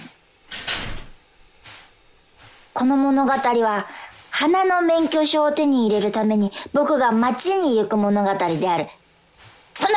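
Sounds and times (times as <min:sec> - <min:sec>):
door slamming shut: 0:00.5 - 0:01.2
speech: 0:02.8 - 0:09.0, 0:09.8 - 0:09.9.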